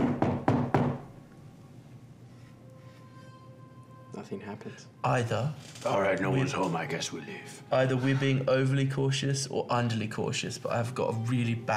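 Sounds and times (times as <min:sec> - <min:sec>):
firm knocks on a door: 0:00.0 - 0:01.1
speech: 0:04.2 - 0:11.7.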